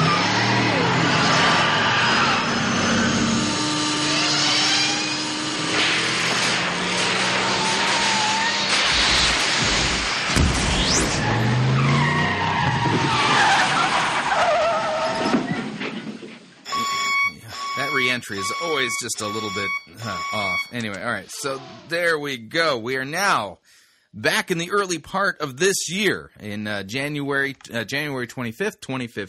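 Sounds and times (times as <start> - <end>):
car engine starting and revving hard: 0.0 - 15.0
car tires screeching in skids: 0.0 - 22.2
speech: 18.6 - 29.2.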